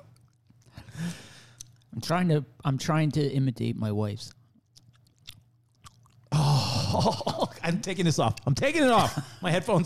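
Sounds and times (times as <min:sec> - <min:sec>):
mouth smacks and clicks: 0:00.0 - 0:00.8, 0:01.5 - 0:01.9, 0:04.5 - 0:06.3
wet gum chewing: 0:00.0 - 0:00.8, 0:01.5 - 0:02.0, 0:04.4 - 0:06.4
speech: 0:02.0 - 0:04.4, 0:07.0 - 0:09.8.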